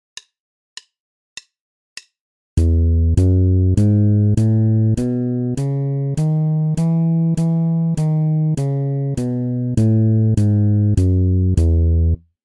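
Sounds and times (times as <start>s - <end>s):
bass playing E major scale exercise: 2.6s - 12.2s.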